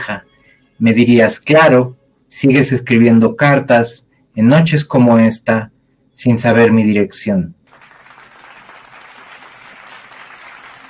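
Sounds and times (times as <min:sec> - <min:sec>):
speech: 0:00.0 - 0:07.6
audience applause: 0:07.7 - 0:10.8.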